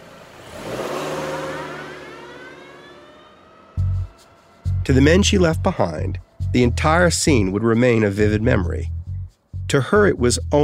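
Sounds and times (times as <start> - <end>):
car engine revving and accelerating as a woman drives away: 0.0 - 10.6
speech: 4.9 - 9.0, 9.7 - 10.6.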